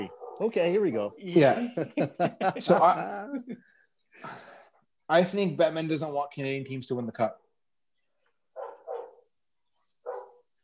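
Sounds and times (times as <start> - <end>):
dog barking: 0.0 - 0.5, 8.6 - 9.3, 10.0 - 10.5
speech: 0.0 - 7.4
laughter: 1.3 - 3.8.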